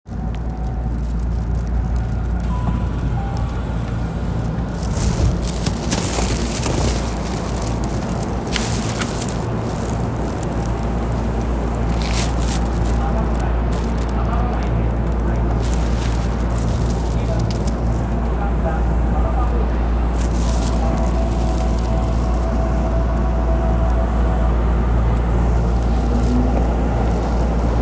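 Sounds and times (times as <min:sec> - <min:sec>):
train sounds: 0:00.1 - 0:27.7.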